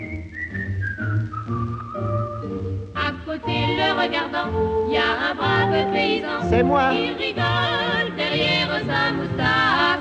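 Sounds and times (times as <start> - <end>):
person whistling a tune: 0.0 - 2.5
soft instrumental accompaniment: 0.0 - 9.9
speech: 4.0 - 9.9.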